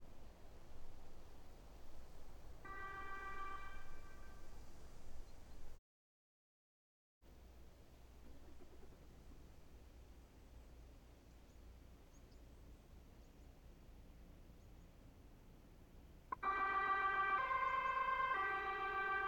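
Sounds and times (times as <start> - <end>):
2013 Volvo V70 ambulance siren: 2.6 - 4.4, 16.3 - 19.2.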